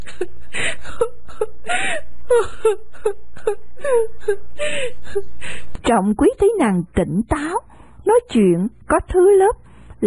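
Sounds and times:
woman wailing and sobbing in grief: 0.1 - 5.3
speech: 5.1 - 10.0.

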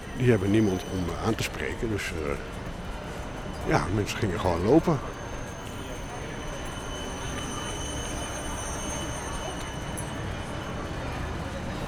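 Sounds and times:
slow-moving trams passing on a city street: 0.0 - 11.8
speech: 0.2 - 2.6, 3.6 - 5.2.

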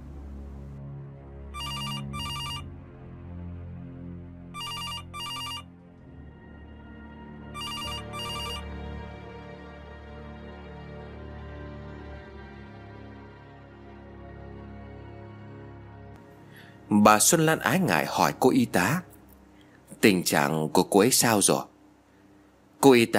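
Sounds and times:
low sustained background: 0.0 - 23.1
telephone ringing in double rings: 1.6 - 2.7, 4.6 - 5.7, 7.6 - 8.6
speech: 16.9 - 19.1, 20.0 - 21.7, 22.8 - 23.1.

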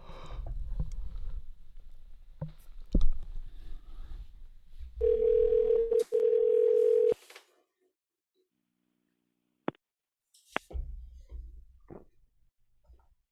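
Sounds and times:
telephone call tone while calling a hotel: 5.0 - 7.2.

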